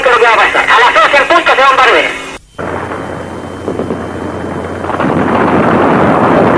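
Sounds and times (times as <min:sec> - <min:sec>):
dense continuous roar of noise: 0:00.0 - 0:06.5
gunshots fired at a room being bombarded: 0:02.6 - 0:06.5.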